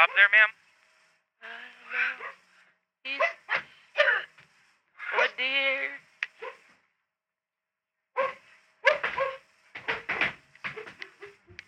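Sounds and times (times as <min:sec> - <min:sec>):
speech: 0:00.0 - 0:00.6
dog barking sharply: 0:01.9 - 0:02.4, 0:03.1 - 0:04.3, 0:05.0 - 0:05.4, 0:06.3 - 0:06.7, 0:08.2 - 0:09.4.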